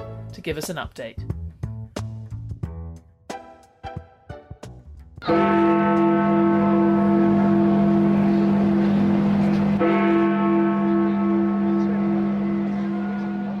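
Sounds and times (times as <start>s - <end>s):
speech: 0.4s - 1.3s, 5.2s - 5.7s
deep bell of Big Ben clock tower tolling: 5.3s - 13.5s.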